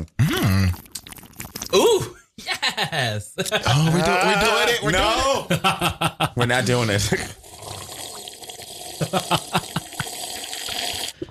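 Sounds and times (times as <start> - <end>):
water sipped through a gap in the teeth: 0.2 - 2.0, 7.4 - 11.2
laughter: 2.4 - 6.6, 9.0 - 10.2
speech: 2.8 - 7.4, 9.1 - 9.7.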